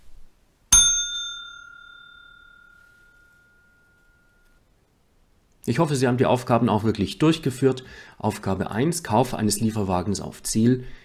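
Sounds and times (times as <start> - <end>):
single bright metallic bell strike: 0.7 - 4.6
speech: 5.6 - 11.0.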